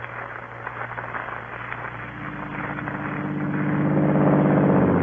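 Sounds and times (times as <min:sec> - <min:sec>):
car engine turning over, idling and revving as the car pulls away: 0:02.2 - 0:05.0.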